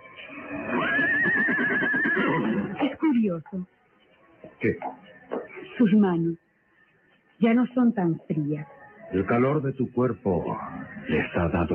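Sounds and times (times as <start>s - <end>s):
horse neighing loudly in a long wavering whinny: 0.2s - 2.8s
speech: 3.2s - 3.8s, 4.6s - 5.1s, 5.8s - 6.4s, 7.4s - 11.7s.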